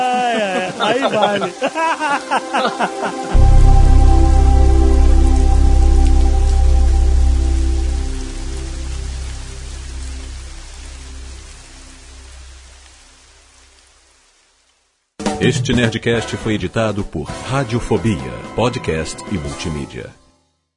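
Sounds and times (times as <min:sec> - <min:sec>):
laughter: 0:00.0 - 0:03.4
heavy steady rain pouring: 0:00.0 - 0:15.0
speech: 0:00.8 - 0:03.5, 0:15.4 - 0:20.2.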